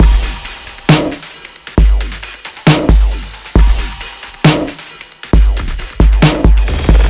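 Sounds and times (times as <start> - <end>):
drum kit: 0.0 - 7.0.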